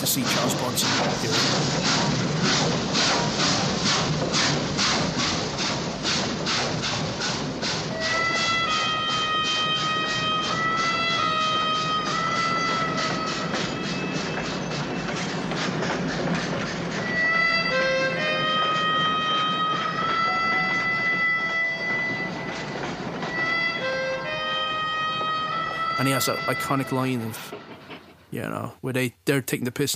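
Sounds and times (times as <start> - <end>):
train wheels clacking over the rails: 0.0 - 28.8
speech: 0.1 - 5.4, 26.2 - 27.7, 28.3 - 29.9
shrill metallic squeals and whines of passing train cars: 6.5 - 28.3.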